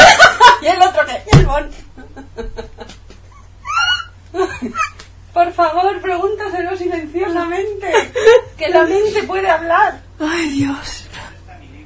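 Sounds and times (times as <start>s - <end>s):
laughter: 0.0s - 0.8s, 2.0s - 5.1s, 7.8s - 9.1s
low hum: 0.0s - 11.8s
dog whimpering and whining: 3.3s - 4.2s
speech: 8.8s - 11.0s.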